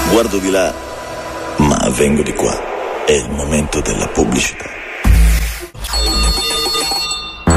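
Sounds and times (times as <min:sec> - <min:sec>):
speech: 0:00.2 - 0:00.9, 0:01.6 - 0:04.8
bell ringing with a sustained metallic tone: 0:05.9 - 0:07.5.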